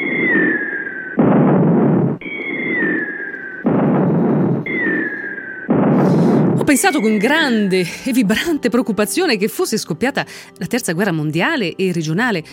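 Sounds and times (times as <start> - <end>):
high slightly falling whistle: 0.0 - 1.2, 2.2 - 3.7
series of loud dense broadband explosions: 0.0 - 6.6
speech: 6.7 - 12.5.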